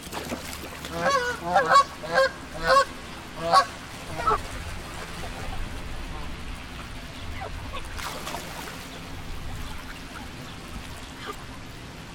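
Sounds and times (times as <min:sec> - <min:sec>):
bird honking calls: 0:00.9 - 0:04.4.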